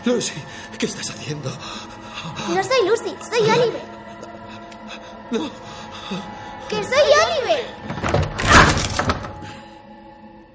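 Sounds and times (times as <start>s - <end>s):
speech: 0.0s - 3.9s, 5.3s - 8.2s
room door being opened: 7.8s - 9.6s.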